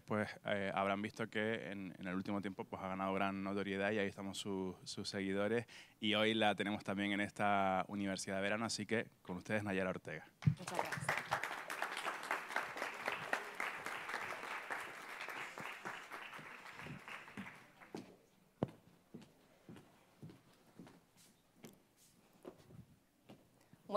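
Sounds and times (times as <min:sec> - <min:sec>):
speech: 0:00.1 - 0:11.4
audience applauding: 0:10.4 - 0:18.1.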